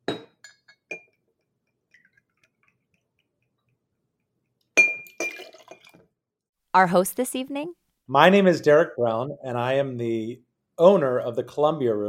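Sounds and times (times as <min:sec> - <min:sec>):
glass clinking in a mixing glass: 0:00.0 - 0:02.8, 0:04.8 - 0:06.0
liquor poured into a mixing glass for a stirred cocktail: 0:05.1 - 0:06.0
speech: 0:06.8 - 0:12.0.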